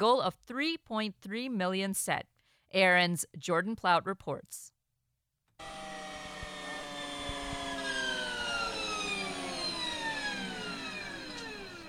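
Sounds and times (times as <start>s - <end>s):
speech: 0.0s - 4.7s, 5.6s - 6.0s
Harley-Davidson prototype electric motorcycle revving at a zero-emission vehicle showcase: 5.6s - 11.8s.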